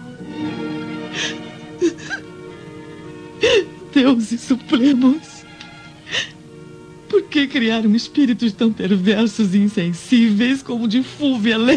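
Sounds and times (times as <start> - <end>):
woman sobbing deeply in her bedroom: 1.1 - 2.3, 3.4 - 5.3, 6.0 - 6.4
speech: 3.9 - 5.4, 7.4 - 11.7.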